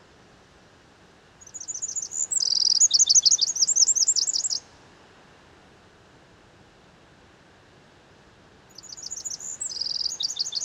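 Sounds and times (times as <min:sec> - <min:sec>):
Eurasian wren Troglodytes troglodytes song with dry rattling trill: 0:01.4 - 0:04.6, 0:08.7 - 0:10.6.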